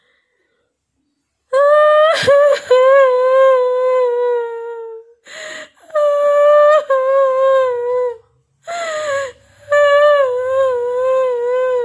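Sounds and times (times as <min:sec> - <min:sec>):
woman crying mournfully: 0:01.6 - 0:05.0, 0:05.9 - 0:11.8
woman sobbing breaths: 0:05.2 - 0:05.9, 0:08.6 - 0:09.7.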